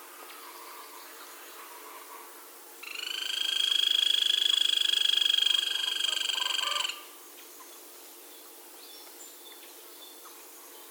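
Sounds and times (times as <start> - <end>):
Grey-crowned woodpecker delivering a loud steady machine-like pulsed trill: 2.8 - 7.0.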